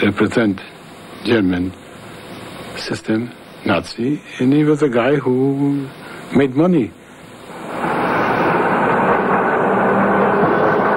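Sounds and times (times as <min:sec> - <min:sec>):
speech: 0:00.0 - 0:01.8, 0:02.8 - 0:07.0
train rumbling on rails: 0:07.5 - 0:10.9.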